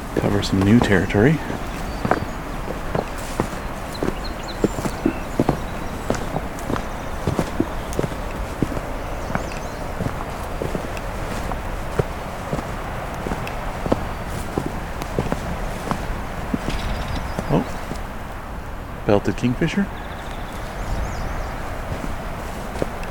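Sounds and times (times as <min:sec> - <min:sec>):
footsteps crunching along a shoreline with driftwood: 0:00.0 - 0:23.0
wind noise: 0:00.0 - 0:23.0
speech: 0:00.2 - 0:02.2, 0:19.3 - 0:20.0.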